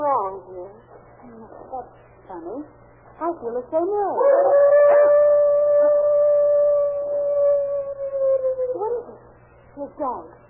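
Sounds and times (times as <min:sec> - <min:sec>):
faint noise: 0:00.0 - 0:10.4
speech: 0:01.8 - 0:04.9, 0:10.0 - 0:10.4
dog howling: 0:04.1 - 0:09.2.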